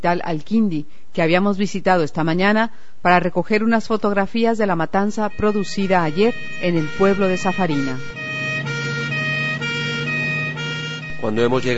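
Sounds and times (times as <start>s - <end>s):
speech: 0.0s - 8.2s, 11.2s - 11.7s
ambulance sirens wailing: 5.2s - 11.7s
engine rumble: 5.4s - 11.7s.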